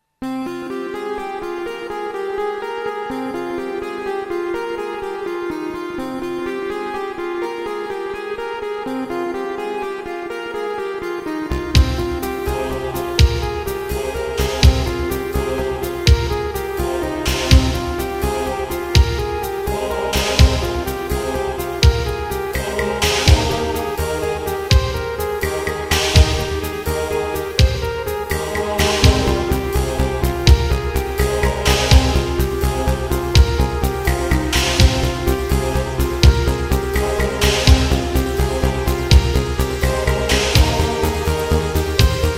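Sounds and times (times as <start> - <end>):
music evoking a ship at sea: 0.0 - 42.3.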